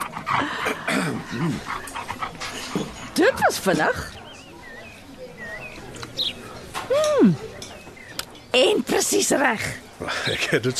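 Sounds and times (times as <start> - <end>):
dog panting at a pub: 0.0 - 3.9
faint murmur at a pub: 0.0 - 10.7
speech: 1.3 - 1.8, 3.5 - 4.2, 8.6 - 10.7.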